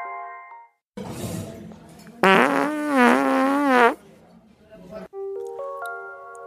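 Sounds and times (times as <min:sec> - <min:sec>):
loud fart sounds: 0:02.2 - 0:04.0.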